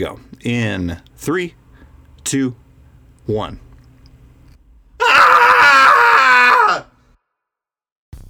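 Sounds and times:
speech: 0:00.0 - 0:01.6, 0:02.2 - 0:02.6, 0:03.2 - 0:03.6
several voices screaming together: 0:05.0 - 0:07.0.

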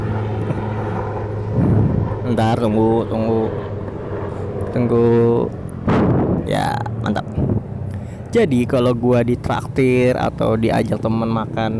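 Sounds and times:
helicopter engine rumble flying overhead: 0:00.0 - 0:11.7
speech: 0:02.3 - 0:03.7, 0:04.7 - 0:07.7, 0:08.3 - 0:11.7.

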